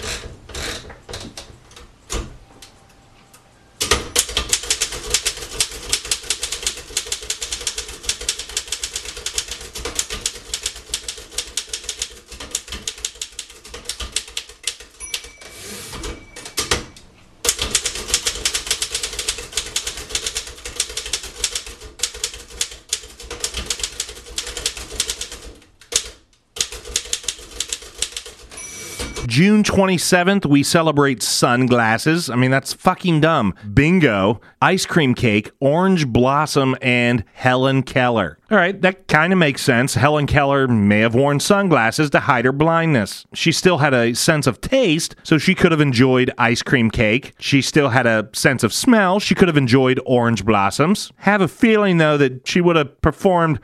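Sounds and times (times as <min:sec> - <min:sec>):
typewriter typing: 0:03.8 - 0:29.3
typewriter carriage-return bell ding: 0:15.0 - 0:17.0, 0:28.5 - 0:29.3
typewriter carriage-return slide: 0:15.4 - 0:17.0
speech: 0:29.4 - 0:53.6.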